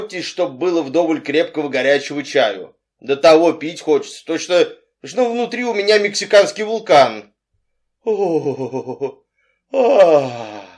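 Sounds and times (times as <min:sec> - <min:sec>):
speech: 0:00.1 - 0:07.3, 0:08.0 - 0:10.6
voice imitating a woman's unmelodious yawn: 0:09.7 - 0:10.7.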